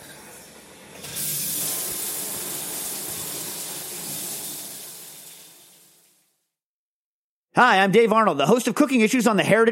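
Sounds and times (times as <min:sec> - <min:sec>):
shower water spraying: 0:00.0 - 0:06.3
speech: 0:07.6 - 0:09.7.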